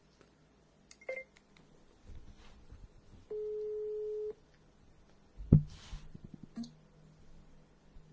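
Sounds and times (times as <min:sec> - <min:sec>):
low steady telephone call tone: 0:03.3 - 0:04.4.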